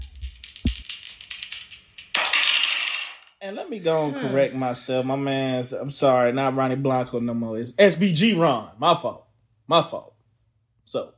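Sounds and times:
hard plastic dice shaken and tumbling across a table: 0.0 - 3.4
speech: 3.4 - 10.2, 10.9 - 11.1.

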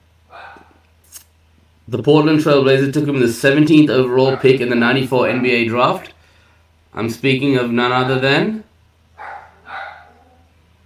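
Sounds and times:
low steady hum: 0.0 - 10.8
dog barking: 0.3 - 0.8, 4.3 - 4.6, 9.2 - 10.5
speech: 1.9 - 6.2, 6.9 - 8.6.

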